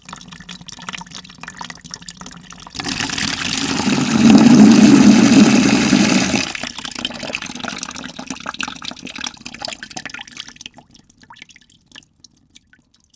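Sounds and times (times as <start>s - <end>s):
water filling: 0.0s - 10.2s.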